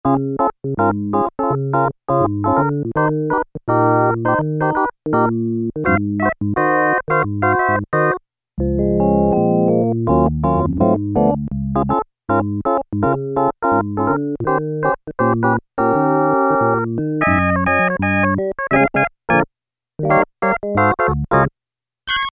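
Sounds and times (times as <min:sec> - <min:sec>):
electric organ on a Yamaha DX7: 0:00.0 - 0:21.5.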